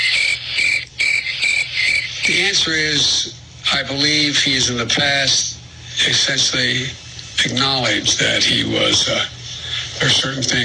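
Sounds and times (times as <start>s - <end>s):
chorus of crickets chirping: 0.0s - 2.5s
speech: 2.5s - 9.4s, 10.0s - 10.6s.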